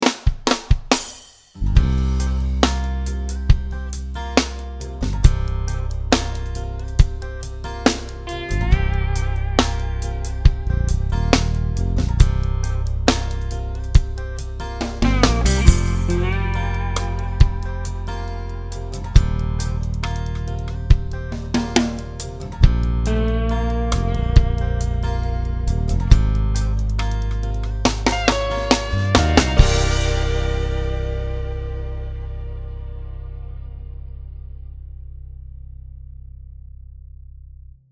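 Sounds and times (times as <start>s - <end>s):
drum backbeat: 0.0s - 18.3s, 19.0s - 31.4s.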